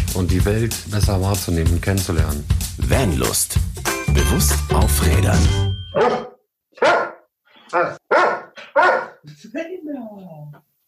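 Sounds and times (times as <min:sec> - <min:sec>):
speech: 0:00.2 - 0:07.0, 0:07.7 - 0:08.0, 0:09.2 - 0:10.7
dog barking: 0:06.0 - 0:09.2.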